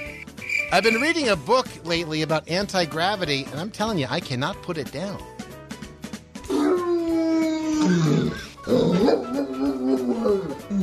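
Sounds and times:
speech: 0:00.7 - 0:05.3
dog howling in long wavering cries: 0:06.5 - 0:10.8
dog giving rough barks: 0:09.0 - 0:09.4.

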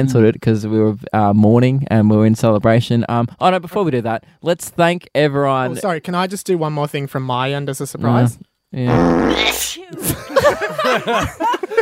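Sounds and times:
speech: 0:00.0 - 0:11.6
loud buzzy fart sound effect: 0:08.9 - 0:09.7
people chuckling with laughter: 0:09.3 - 0:11.7.

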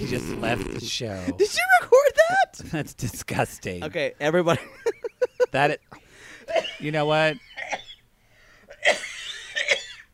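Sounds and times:
speech: 0:00.0 - 0:07.5
faint breathy intake: 0:06.0 - 0:06.6
harsh wheezy coughs with a rasping whistling edge: 0:06.4 - 0:08.1, 0:08.7 - 0:10.1.

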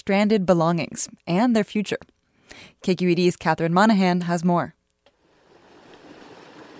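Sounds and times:
speech: 0:00.0 - 0:04.8
flooded river water rushing: 0:05.3 - 0:06.7.

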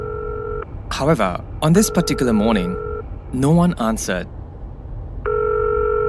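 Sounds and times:
steady electronic telephone tone ringing in the morning: 0:00.0 - 0:00.6, 0:01.8 - 0:03.0, 0:05.2 - 0:06.0
low hum: 0:00.0 - 0:06.0
speech: 0:01.0 - 0:04.4.

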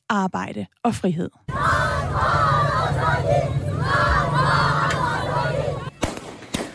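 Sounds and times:
speech: 0:00.1 - 0:04.6
crowd of women protesters chanting slogans outside the education ministry in Kabul: 0:01.5 - 0:05.9
shots fired into the air by the Taliban: 0:06.0 - 0:06.7.

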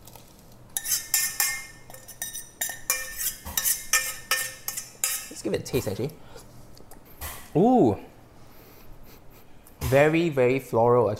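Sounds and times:
utensil clinking and scraping cookware while transferring cooked mulberries into a larger pan: 0:00.8 - 0:05.4
speech: 0:05.4 - 0:06.4, 0:07.6 - 0:08.1, 0:09.9 - 0:11.1.

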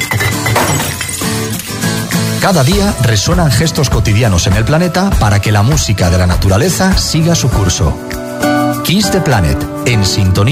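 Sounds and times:
glass bottles clinking in recycling: 0:00.0 - 0:03.0
glass bottles shattering in recycling: 0:00.0 - 0:03.0
speech: 0:02.4 - 0:10.4.

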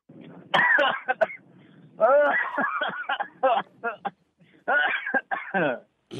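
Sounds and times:
low hum: 0:00.1 - 0:06.0
person coughing deliberately with a harsh rasp: 0:00.6 - 0:01.4, 0:02.0 - 0:06.1
laughter: 0:02.0 - 0:04.0.

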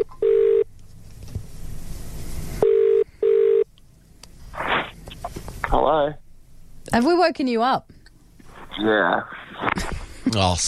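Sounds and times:
electronic dialing tones of a phone call: 0:00.0 - 0:00.7, 0:02.6 - 0:03.7
speech: 0:05.8 - 0:06.2, 0:06.9 - 0:08.0, 0:08.8 - 0:10.6.

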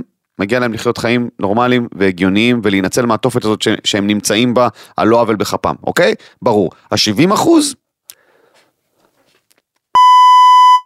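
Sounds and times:
speech: 0:00.4 - 0:07.8
censor bleep steady pure electronic tone: 0:10.0 - 0:10.8.

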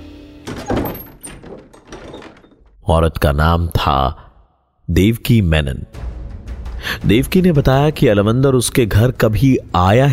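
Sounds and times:
door opening thunk: 0:00.5 - 0:02.8
speech: 0:02.9 - 0:04.2, 0:04.9 - 0:06.0, 0:06.8 - 0:10.1.

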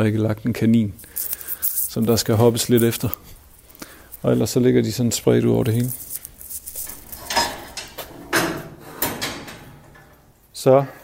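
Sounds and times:
speech: 0:00.0 - 0:01.4, 0:02.0 - 0:03.3, 0:04.2 - 0:06.1, 0:10.6 - 0:11.0
quiet handling of a stable door lock: 0:00.7 - 0:10.4
stable door padlock and handle metallic clacks and rattles: 0:05.7 - 0:10.3.

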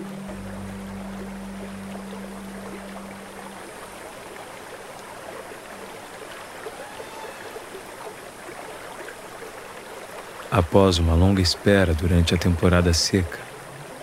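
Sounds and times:
low droning hum: 0:00.0 - 0:04.5
water rushing and flowing into small lakes: 0:00.0 - 0:14.0
speech: 0:10.5 - 0:13.5.

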